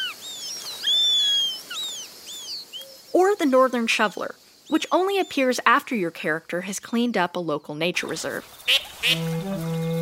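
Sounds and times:
Eurasian sparrowhawk calling with thin high-pitched whistles: 0:00.0 - 0:03.2
speech: 0:03.2 - 0:09.9.

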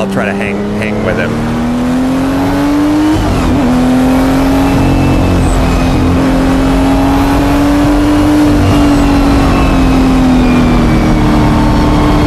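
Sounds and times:
speech: 0:00.0 - 0:01.6
car engine revving through gears with manual clutch: 0:00.0 - 0:12.2
road rumble: 0:00.0 - 0:12.2.

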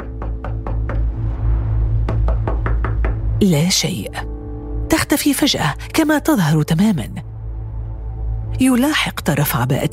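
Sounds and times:
firm knocking on a house door: 0:00.0 - 0:01.2, 0:02.0 - 0:03.4
steady low droning background: 0:00.0 - 0:09.9
speech: 0:03.4 - 0:04.3, 0:05.0 - 0:07.2, 0:08.6 - 0:09.9.

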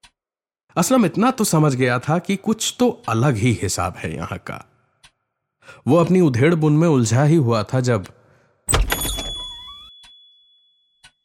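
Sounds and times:
speech: 0:00.8 - 0:04.7, 0:05.7 - 0:08.8
saloon door pushed open with a thump: 0:08.7 - 0:09.6.

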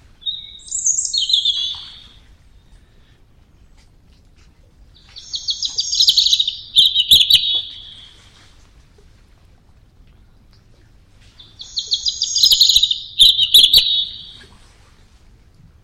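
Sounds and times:
European robin singing: 0:00.0 - 0:02.9, 0:04.9 - 0:08.5, 0:11.3 - 0:14.5.

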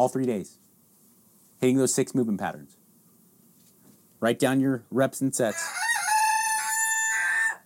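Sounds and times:
speech: 0:00.0 - 0:00.7, 0:01.6 - 0:02.8, 0:04.2 - 0:05.8
rooster crowing: 0:05.5 - 0:07.6.

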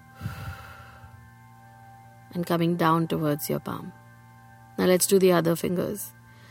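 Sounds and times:
faint steady hum: 0:00.0 - 0:06.4
slow exhale during a finger-tracing breathing exercise: 0:00.1 - 0:01.2
speech: 0:02.3 - 0:04.0, 0:04.8 - 0:06.2.

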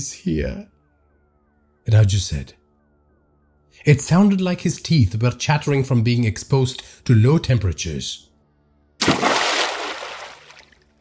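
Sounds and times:
speech: 0:00.0 - 0:00.8, 0:01.8 - 0:02.6, 0:03.8 - 0:08.3
body splashing into water: 0:09.0 - 0:10.9.

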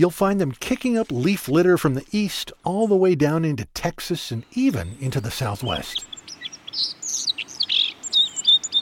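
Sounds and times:
speech: 0:00.0 - 0:06.1, 0:06.8 - 0:07.3
white-throated sparrow song: 0:04.4 - 0:08.7.

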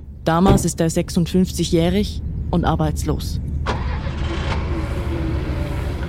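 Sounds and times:
road noise: 0:00.0 - 0:06.0
speech: 0:00.2 - 0:03.5
Hyundai car starting and driving off: 0:03.5 - 0:06.0.

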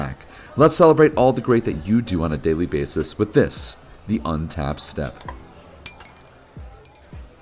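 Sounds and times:
speech: 0:00.0 - 0:05.4
glasses clinking in a toast: 0:05.0 - 0:07.3.

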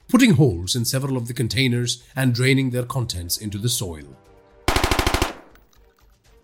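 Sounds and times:
speech: 0:00.1 - 0:04.3
Israeli Tavor CTAR 21 rifle firing a rapid burst: 0:04.7 - 0:05.6.

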